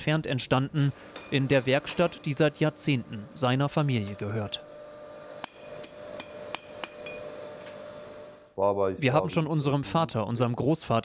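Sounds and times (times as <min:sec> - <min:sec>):
speech: 0:00.0 - 0:04.7, 0:08.6 - 0:11.0
hammer striking an anvil in a family-run blacksmith's workshop: 0:05.4 - 0:07.3.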